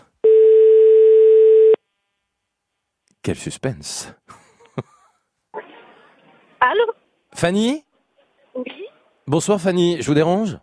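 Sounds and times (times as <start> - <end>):
telephone ringing tone on a live call: 0.2 - 1.8
speech: 3.2 - 4.9, 6.7 - 7.9, 8.6 - 10.6
laughter: 4.3 - 5.2.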